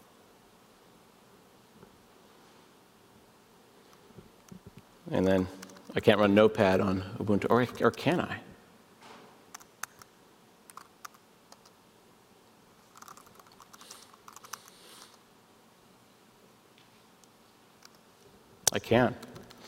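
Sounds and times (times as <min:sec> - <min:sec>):
speech: 0:05.1 - 0:08.4, 0:18.8 - 0:19.3
typing commands on a computer keyboard: 0:05.2 - 0:06.0, 0:10.7 - 0:11.7, 0:12.9 - 0:15.1.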